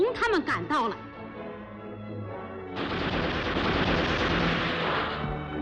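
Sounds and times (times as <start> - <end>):
speech: 0.0 - 1.2
sustained burst of rapid gunfire: 2.8 - 5.5.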